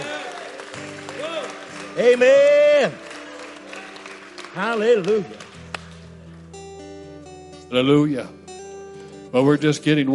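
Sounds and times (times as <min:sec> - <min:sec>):
audience clapping: 0:00.0 - 0:06.5
speech: 0:02.0 - 0:03.1, 0:04.5 - 0:05.5, 0:07.7 - 0:08.4, 0:09.3 - 0:10.1.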